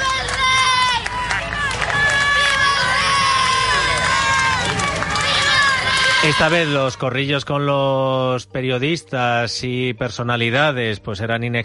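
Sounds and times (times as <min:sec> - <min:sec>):
large outdoor crowd booing members of the government: 0:00.0 - 0:07.2
speech: 0:06.2 - 0:11.6.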